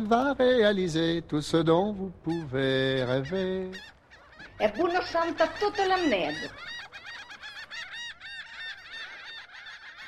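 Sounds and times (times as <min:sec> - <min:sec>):
speech: 0:00.0 - 0:04.0, 0:04.6 - 0:06.8
flock of birds with harsh honking cries: 0:02.3 - 0:10.0.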